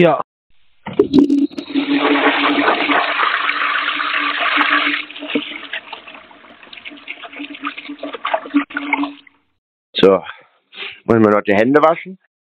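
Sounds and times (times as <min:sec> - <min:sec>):
speech: 0:00.0 - 0:03.2, 0:10.0 - 0:12.3
toilet flushing: 0:01.0 - 0:09.4.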